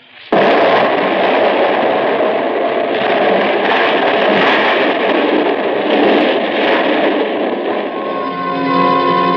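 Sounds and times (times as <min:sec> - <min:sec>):
dynamite explosion: 0:00.3 - 0:09.3
faint ringing tone: 0:07.9 - 0:09.3.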